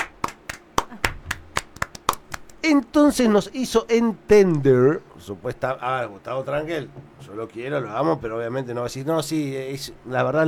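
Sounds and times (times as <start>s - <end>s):
one person clapping hands in applause: 0.0s - 2.6s
speech: 2.7s - 10.4s.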